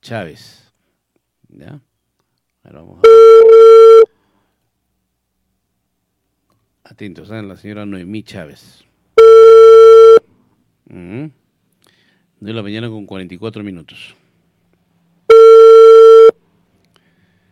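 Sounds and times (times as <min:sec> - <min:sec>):
speech: 0:00.0 - 0:00.6, 0:01.5 - 0:01.9, 0:02.6 - 0:04.0, 0:06.8 - 0:08.9, 0:10.9 - 0:11.4, 0:12.4 - 0:14.2
ringback tone of an outgoing phone call: 0:03.0 - 0:04.1, 0:09.2 - 0:10.2, 0:15.3 - 0:16.4.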